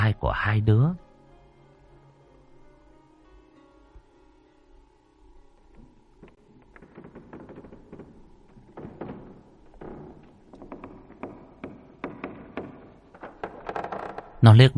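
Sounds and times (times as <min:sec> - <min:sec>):
speech: 0:00.1 - 0:01.0, 0:14.4 - 0:14.7
wooden knocks and thumps of a wardrobe door being closed: 0:06.2 - 0:14.3.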